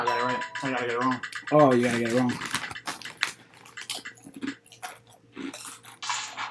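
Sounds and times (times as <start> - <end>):
speech: 0.0 - 2.6
people chewing crunchy food: 1.8 - 6.4.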